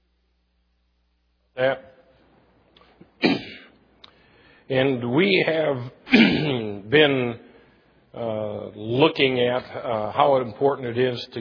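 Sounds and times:
speech: 0:01.6 - 0:01.9, 0:04.7 - 0:07.5, 0:08.2 - 0:11.4
throat clearing from a frog in the throat: 0:03.2 - 0:03.8, 0:06.1 - 0:06.8.

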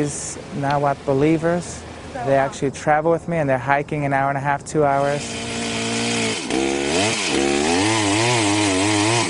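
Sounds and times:
speech: 0:00.0 - 0:05.5
chainsaw cutting down a tree in the mountains: 0:05.0 - 0:09.2.

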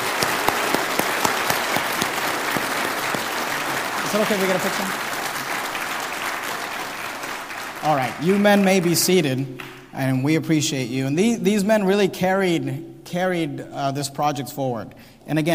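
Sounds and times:
audience applause: 0:00.0 - 0:09.0
speech: 0:04.1 - 0:05.1, 0:07.8 - 0:15.5.

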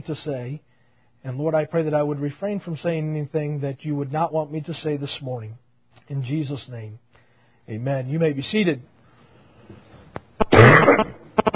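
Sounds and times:
speech: 0:00.0 - 0:07.0, 0:07.7 - 0:08.9
person coughing: 0:10.4 - 0:11.5.

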